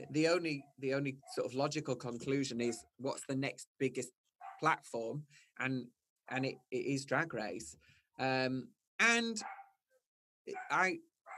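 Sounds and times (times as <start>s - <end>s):
speech: 0.0s - 9.6s, 10.4s - 11.1s
dog barking: 4.4s - 4.7s, 9.4s - 9.8s, 10.5s - 11.3s.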